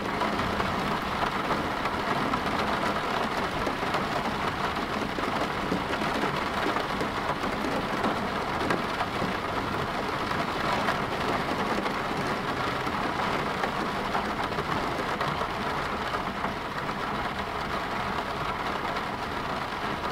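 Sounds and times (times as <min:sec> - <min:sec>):
rain falling on a car at night: 0:00.0 - 0:20.1.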